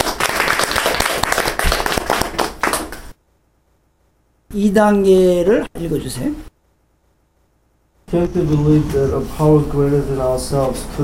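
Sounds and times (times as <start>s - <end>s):
group applause welcoming someone: 0.0s - 3.2s
speech: 4.6s - 6.5s, 8.1s - 11.0s.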